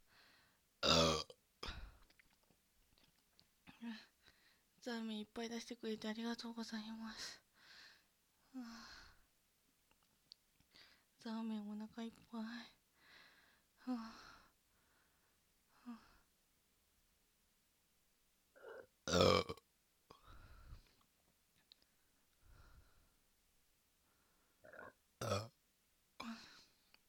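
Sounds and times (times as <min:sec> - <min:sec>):
person burping: 0:00.8 - 0:01.4, 0:18.6 - 0:19.6, 0:24.6 - 0:25.6
speech: 0:04.8 - 0:07.4, 0:08.6 - 0:08.9, 0:11.2 - 0:12.8, 0:13.8 - 0:14.3, 0:15.9 - 0:16.1, 0:19.1 - 0:19.6.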